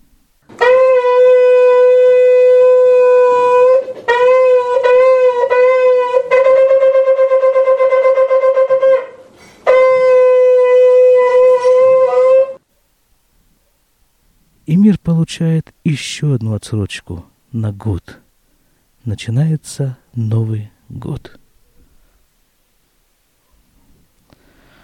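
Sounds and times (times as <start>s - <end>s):
ram's horn shofar being blown: 0.4s - 12.6s
speech: 15.4s - 18.2s, 19.0s - 21.4s.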